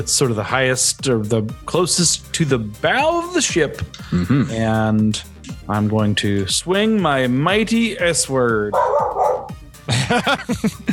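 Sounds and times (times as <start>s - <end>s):
speech: 0.0s - 9.2s, 9.9s - 10.9s
dog barking excitedly with sharp high barks: 8.7s - 9.6s
laughter: 9.9s - 10.9s.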